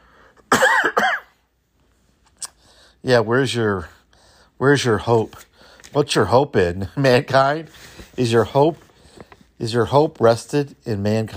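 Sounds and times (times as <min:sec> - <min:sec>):
harsh coughs: 0:00.5 - 0:01.5
speech: 0:03.0 - 0:04.0, 0:04.6 - 0:08.8, 0:09.6 - 0:11.3.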